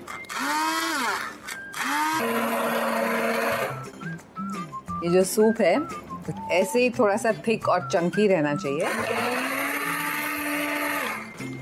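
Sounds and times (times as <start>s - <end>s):
mixer grinder blending soup: 0.0s - 3.8s, 8.8s - 11.6s
speech: 5.0s - 9.4s.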